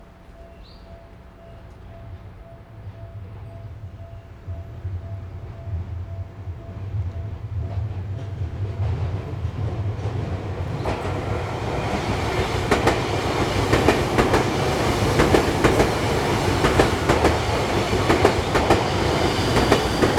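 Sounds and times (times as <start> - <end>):
train: 0.0 - 20.1.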